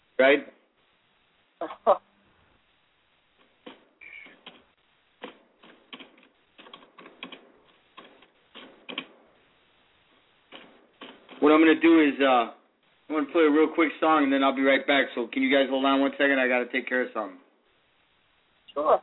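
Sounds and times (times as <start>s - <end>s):
speech: 0.2s - 0.6s, 1.6s - 2.1s, 11.4s - 17.4s, 18.8s - 19.0s
typing on a computer keyboard: 3.4s - 4.6s, 5.2s - 9.2s, 10.5s - 11.4s.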